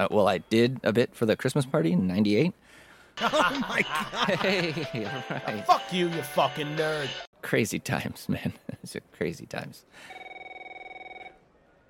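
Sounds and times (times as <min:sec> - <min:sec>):
speech: 0:00.0 - 0:10.2
laughter: 0:03.2 - 0:07.1
telephone ringing with a warbling electronic trill: 0:10.1 - 0:11.4.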